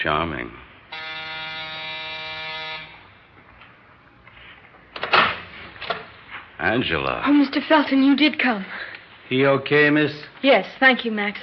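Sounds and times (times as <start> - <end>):
speech: 0.0 - 0.6, 6.6 - 11.4
door buzzer blaring with steady electric drone: 0.9 - 3.3.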